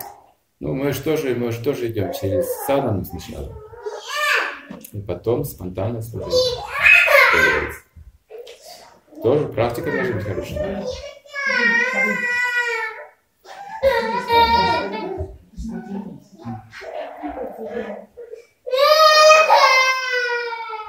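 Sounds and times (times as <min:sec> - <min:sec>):
speech: 0:00.6 - 0:03.7, 0:04.9 - 0:06.7, 0:07.3 - 0:07.8, 0:09.2 - 0:12.3
children fussing and crying: 0:02.1 - 0:04.7, 0:06.3 - 0:08.8, 0:09.7 - 0:15.3, 0:16.4 - 0:20.8.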